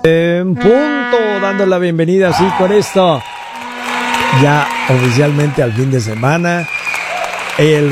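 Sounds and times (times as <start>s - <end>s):
speech: 0.1s - 3.3s, 4.3s - 6.8s, 7.6s - 7.9s
five o'clock whistle blast: 2.3s - 7.2s.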